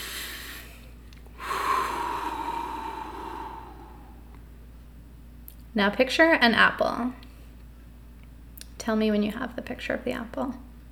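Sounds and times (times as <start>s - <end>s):
person taking a deep breath: 0.0s - 4.4s
speech: 5.8s - 7.2s, 8.8s - 10.7s.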